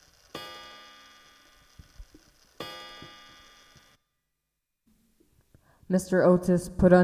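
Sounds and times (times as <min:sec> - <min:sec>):
soft clock ticking: 0:00.0 - 0:03.9
grandfather clock striking: 0:00.4 - 0:01.4, 0:02.6 - 0:03.9
speech: 0:05.9 - 0:07.0.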